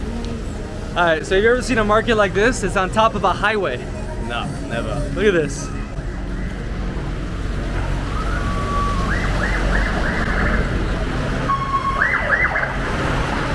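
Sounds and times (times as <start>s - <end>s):
street noise at a market built on top of a highway: 0.0s - 13.5s
speech: 1.0s - 5.8s
police or ambulance siren wailing: 7.7s - 12.9s.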